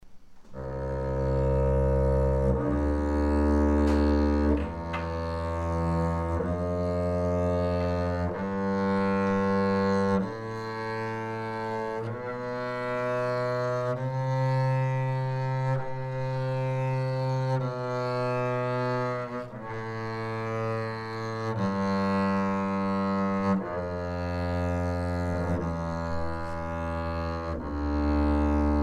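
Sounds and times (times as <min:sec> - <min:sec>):
double bass: 0:00.0 - 0:28.8.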